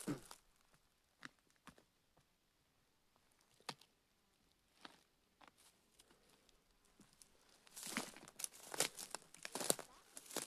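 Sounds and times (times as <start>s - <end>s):
crunching underfoot on brittle forest debris: 0.0s - 1.8s, 4.7s - 10.4s.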